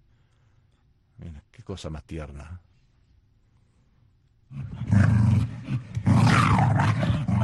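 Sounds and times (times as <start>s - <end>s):
speech: 1.2s - 2.7s
angry dog growling and snarling ferociously: 4.5s - 7.4s.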